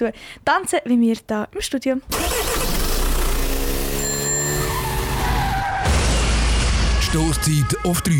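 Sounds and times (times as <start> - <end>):
speech: 0.0 - 2.7, 7.1 - 8.1
car tires squealing in a skid: 3.7 - 7.8.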